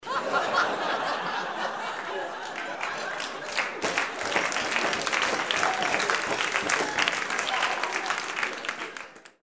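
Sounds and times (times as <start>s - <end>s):
people laughing: 0.0s - 7.1s
applause: 1.9s - 9.4s.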